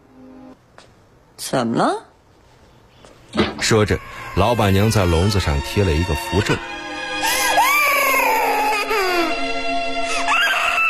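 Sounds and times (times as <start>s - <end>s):
speech: 1.4s - 2.1s, 3.6s - 7.4s
sorrowful high wailing cries from a small demon king: 3.7s - 6.2s, 7.2s - 10.8s.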